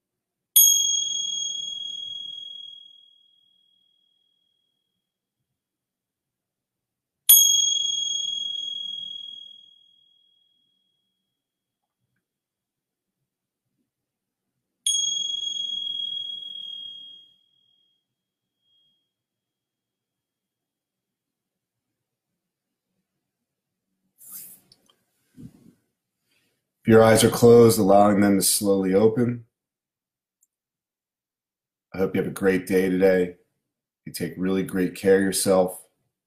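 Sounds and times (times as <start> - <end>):
bright bell ringing: 0.6 - 3.0, 7.3 - 9.8, 14.9 - 17.3
speech: 26.9 - 29.5, 32.0 - 33.4, 34.1 - 35.8.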